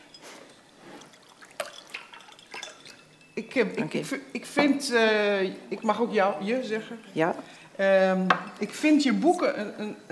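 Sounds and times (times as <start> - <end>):
water being poured into a glass: 0.0 - 3.4
speech: 3.4 - 10.1.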